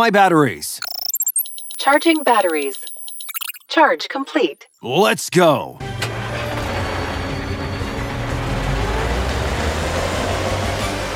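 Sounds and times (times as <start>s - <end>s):
speech: 0.0s - 0.9s, 1.8s - 3.0s, 3.7s - 5.9s
car engine rumbling as the car drives through streets: 5.9s - 11.1s.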